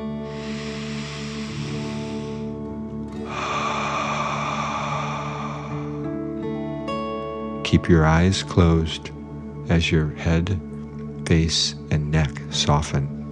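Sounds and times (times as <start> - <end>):
slow deep breath in and out: 0.0 - 7.0
soft sustained music: 0.0 - 13.2
speech: 7.7 - 10.7, 11.3 - 13.1.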